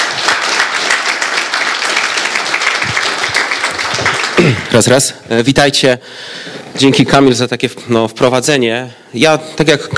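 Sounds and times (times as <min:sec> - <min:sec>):
crowd applauding: 0:00.0 - 0:04.9
speech: 0:04.4 - 0:09.9.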